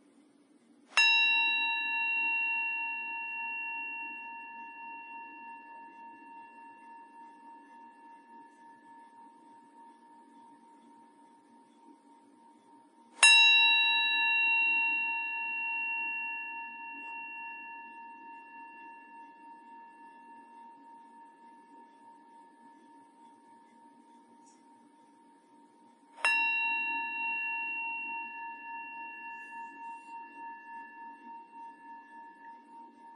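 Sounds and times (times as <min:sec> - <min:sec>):
faint low hum: 0:00.0 - 0:33.1
meditation bell struck: 0:00.9 - 0:33.1.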